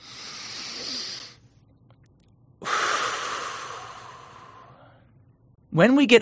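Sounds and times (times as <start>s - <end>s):
slow deep breath in and out as a breathing exercise: 0.0s - 1.6s, 2.6s - 5.2s
speech: 5.8s - 6.2s.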